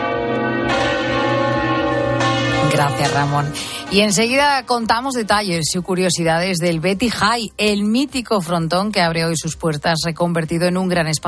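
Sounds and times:
1,500-kilo bronze church bell ringing: 0.0s - 5.2s
speech: 2.7s - 11.2s.

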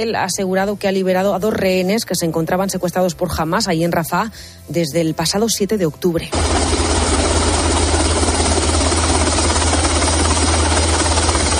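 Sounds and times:
speech: 0.0s - 6.8s
helicopter flying while evacuating hostages: 6.3s - 11.5s.

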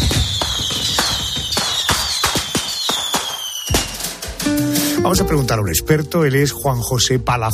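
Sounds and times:
high descending whistle: 0.0s - 3.9s
fireworks exploding in sharp cracks and bangs: 0.0s - 4.3s
speech: 5.0s - 7.5s.

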